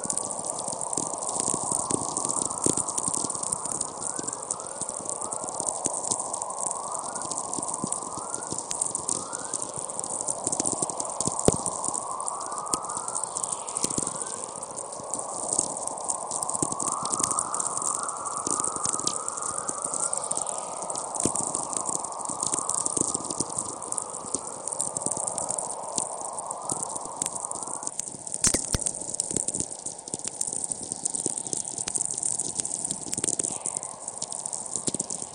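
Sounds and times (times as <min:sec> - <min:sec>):
sharp crackling clicks in natural radio emissions: 0:00.1 - 0:17.5, 0:18.3 - 0:35.3
bright whine in natural radio emissions: 0:28.4 - 0:29.0
natural VLF radio emissions hiss from a remote receiver in Antarctica: 0:28.4 - 0:29.0.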